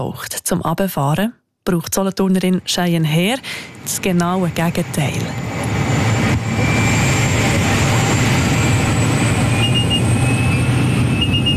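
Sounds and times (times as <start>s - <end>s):
speech: 0.0s - 5.8s
small airplane engine roar inside the cabin: 2.6s - 11.5s
sustained high whine: 2.6s - 11.5s.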